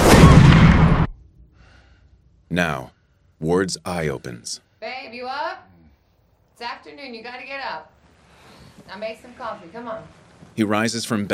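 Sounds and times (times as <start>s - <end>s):
shotgun blast fired at a police officer: 0.0s - 1.2s
speech: 2.5s - 5.7s, 6.6s - 8.0s, 8.8s - 11.3s.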